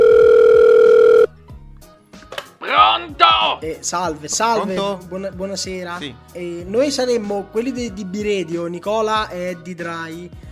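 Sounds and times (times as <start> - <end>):
telephone dial tone as a call is placed: 0.0 - 1.3
speech: 3.6 - 10.5.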